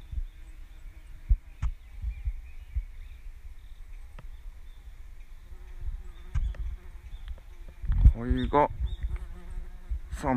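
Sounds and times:
flies buzzing with a faint droning hum: 0.0s - 10.3s
outdoor noise: 0.0s - 10.3s
speech: 8.2s - 8.8s, 10.2s - 10.3s.

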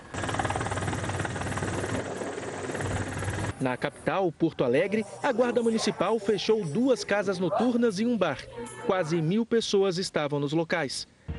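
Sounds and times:
police helicopter flying overhead dispersing beachgoers: 0.0s - 4.1s
speech: 3.6s - 11.2s.

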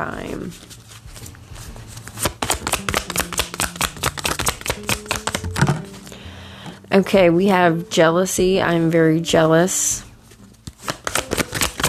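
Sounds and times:
speech: 0.0s - 1.4s, 7.0s - 10.1s
tarot cards being shuffled: 0.3s - 6.1s, 10.3s - 11.8s.

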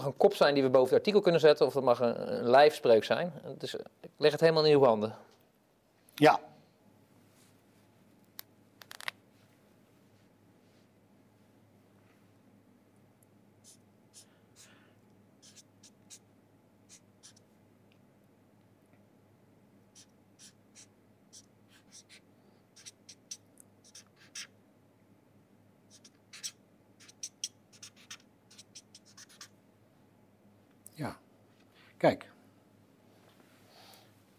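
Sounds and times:
speech: 0.0s - 5.3s, 6.2s - 6.5s, 32.0s - 32.3s
steady low hum: 0.0s - 34.3s
pen scratching across paper writing down a quotation: 15.4s - 16.2s, 16.9s - 17.4s, 20.0s - 22.2s, 22.8s - 24.5s, 25.9s - 29.5s.

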